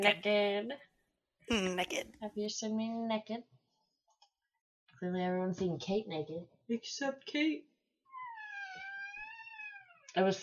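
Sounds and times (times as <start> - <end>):
speech: 0.0 - 0.9, 1.5 - 3.6, 5.0 - 7.7, 10.1 - 10.4
door hinge creaking as a door is adjusted: 8.2 - 9.9.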